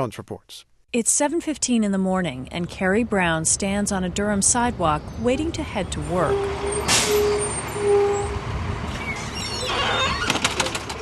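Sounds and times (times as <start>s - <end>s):
speech: 0.0s - 7.3s
steady street noise in Durham, North Carolina: 2.2s - 11.0s
city bus rumbling up to the curb in Durham, North Carolina: 2.4s - 11.0s
city bus doors clattering and hissing pneumatically as they open: 5.1s - 11.0s
sharp hiss of bus air brakes: 6.4s - 8.4s.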